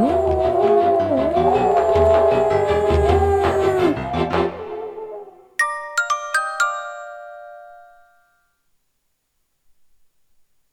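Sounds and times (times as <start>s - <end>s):
pack of polar wolves snarling and howling while fighting at night: 0.0s - 5.6s
bright chime notes: 5.6s - 8.4s.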